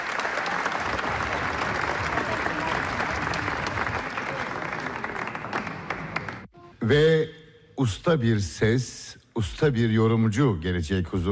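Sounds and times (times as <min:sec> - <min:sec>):
enthusiastic audience applause at a folk music concert: 0:00.0 - 0:06.5
speech: 0:06.9 - 0:11.3.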